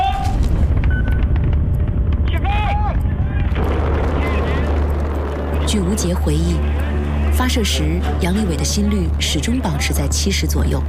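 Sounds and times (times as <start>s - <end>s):
crewed rocket engine igniting and roaring through liftoff: 0.4s - 7.8s
speech: 6.0s - 10.8s.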